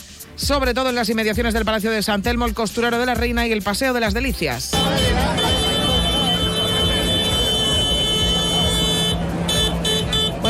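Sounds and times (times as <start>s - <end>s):
speech: 0.4s - 5.6s
tractor horns honking at a farmers' protest for water in Seville: 4.7s - 10.4s
indistinct voices: 4.8s - 10.4s
low tractor engine rumble: 4.8s - 10.4s.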